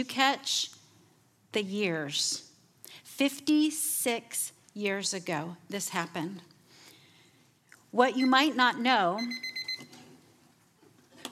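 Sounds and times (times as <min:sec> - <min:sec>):
speech: 0:00.0 - 0:00.8, 0:01.5 - 0:06.5, 0:07.9 - 0:09.5
high electronic timer alarm beeping: 0:08.1 - 0:09.9.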